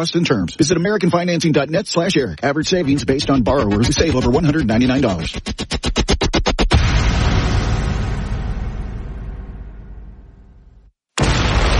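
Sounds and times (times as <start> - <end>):
speech: 0.0 - 6.0
fireworks blast: 6.6 - 10.3, 11.2 - 11.7.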